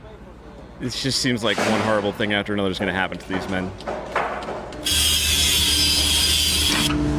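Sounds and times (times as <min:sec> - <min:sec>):
speech: 0:00.8 - 0:04.0
power saw cutting into wood: 0:04.8 - 0:07.0.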